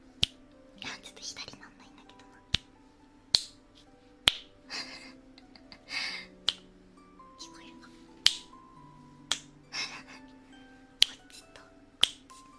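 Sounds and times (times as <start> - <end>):
finger snapping: 0.2 - 0.4, 2.5 - 2.7, 3.3 - 3.6, 4.3 - 4.6, 6.4 - 6.7, 8.2 - 8.6, 9.3 - 9.6, 11.0 - 11.4, 12.0 - 12.4.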